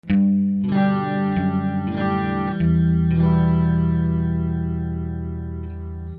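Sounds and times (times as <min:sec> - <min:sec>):
guitar: 0:00.0 - 0:06.1
walking bass: 0:00.0 - 0:06.1.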